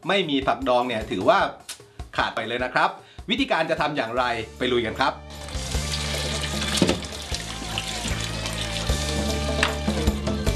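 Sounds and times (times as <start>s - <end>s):
speech: 0.0s - 5.3s
running water splashing as vegetables are washed: 5.4s - 9.8s.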